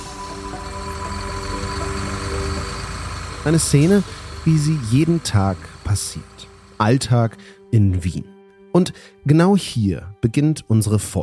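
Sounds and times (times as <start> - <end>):
city bus combustion engine accelerating: 0.0 - 7.4
speech: 3.4 - 11.2.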